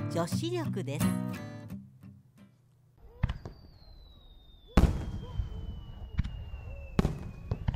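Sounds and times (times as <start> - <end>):
speech: 0.1 - 1.6
fireworks bursting outdoors: 3.0 - 7.7
whistling rocket streak descending in pitch: 3.1 - 7.7.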